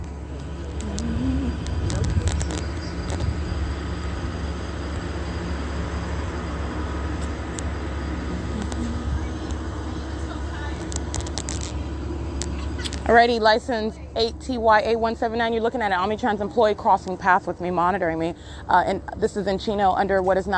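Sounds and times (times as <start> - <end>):
city bus engine rumbling: 0.0 - 20.5
street noise: 0.0 - 20.5
high squeaks and clicks: 0.4 - 3.8, 7.2 - 9.6, 10.8 - 11.8, 12.4 - 13.1
speech: 13.1 - 20.5.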